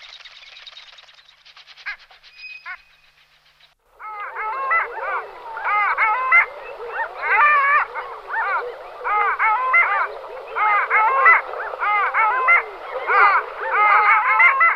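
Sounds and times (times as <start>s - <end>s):
long-tailed ducks in chorus yodelling: 4.0s - 14.7s.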